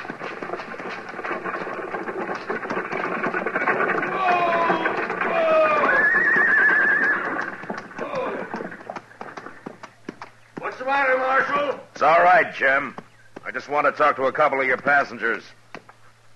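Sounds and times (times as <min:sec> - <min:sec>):
dense rumbling wash: 0:00.0 - 0:09.8
hooves of horses being ridden forward clip-clopping: 0:00.0 - 0:16.3
horse whinnying: 0:03.3 - 0:09.0
speech: 0:12.0 - 0:15.6.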